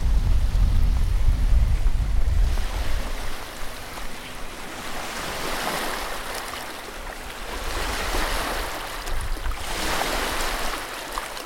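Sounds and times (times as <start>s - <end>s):
low rumble of wind through the microphone: 0.0s - 11.0s
waves crashing hard on the shore: 0.0s - 11.4s.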